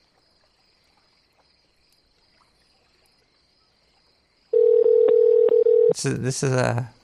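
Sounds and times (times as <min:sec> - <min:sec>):
steady telephone tone as a call is placed: 0:04.6 - 0:06.0
person speaking: 0:05.9 - 0:06.9.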